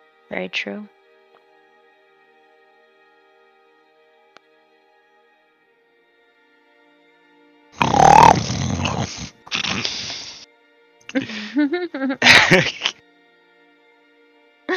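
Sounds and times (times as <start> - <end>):
speech: 0.3 - 1.0, 11.2 - 12.9
creature grunting and snoring: 7.8 - 10.4
wet lip-smacking snuffles: 7.8 - 10.4
laughter: 11.1 - 13.0.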